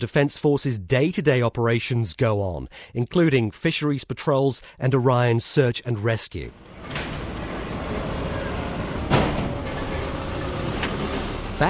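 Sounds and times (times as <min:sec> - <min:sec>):
speech: 0:00.0 - 0:07.2
hissing mechanical clank: 0:06.6 - 0:11.6
rumble of engines and heavy vehicles on a dockside: 0:06.6 - 0:11.6.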